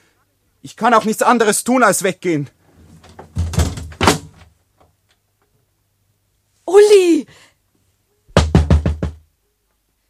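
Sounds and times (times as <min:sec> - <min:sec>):
speech: 0:00.6 - 0:02.6
heavy knocking on a door: 0:03.0 - 0:04.4, 0:08.4 - 0:09.2.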